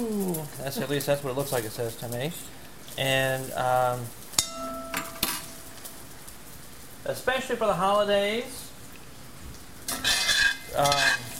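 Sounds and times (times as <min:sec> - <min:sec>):
speech: 0:00.0 - 0:04.2, 0:07.0 - 0:08.6, 0:10.7 - 0:11.3
sausages frying in a pan: 0:00.0 - 0:11.3
stirring and scraping sausages in a pan: 0:09.8 - 0:11.3.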